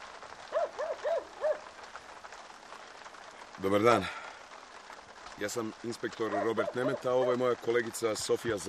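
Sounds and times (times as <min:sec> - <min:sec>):
steady hissing background: 0:00.0 - 0:08.6
dog barking at visitors arriving: 0:00.5 - 0:01.6, 0:06.3 - 0:07.4
speech: 0:03.6 - 0:04.2, 0:05.4 - 0:08.6.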